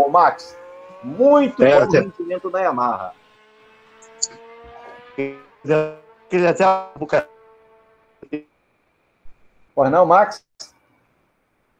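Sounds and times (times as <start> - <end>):
garbled breaking-up voice over a call line: 0.0 - 3.1, 5.2 - 7.3
frozen droning tone: 0.0 - 9.0
speech: 0.1 - 3.2, 5.2 - 7.3, 8.2 - 8.5, 9.8 - 10.7.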